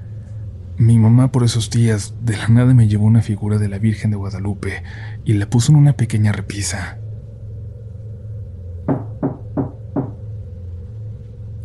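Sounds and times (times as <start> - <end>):
steady low hum: 0.0 - 11.6
speech: 0.8 - 7.0
firm knocking on a door: 8.9 - 10.2.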